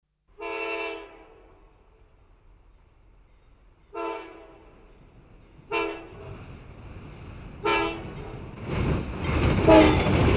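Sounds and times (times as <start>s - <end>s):
passenger train honking while passing through a station: 0.4s - 1.8s, 3.8s - 5.0s, 5.6s - 6.4s, 7.6s - 8.4s, 9.6s - 10.2s.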